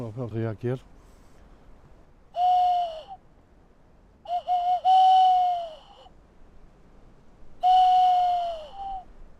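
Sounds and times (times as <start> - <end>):
flute sound lure imitating a male tawny owl call: 2.4 - 3.2, 4.2 - 6.1, 7.6 - 9.1.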